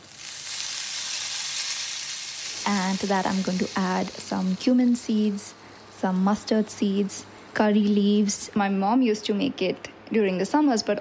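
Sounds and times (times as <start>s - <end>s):
tablespoon of ghee sizzling as it heats in a pan: 0.0s - 8.2s
speech: 2.7s - 10.9s.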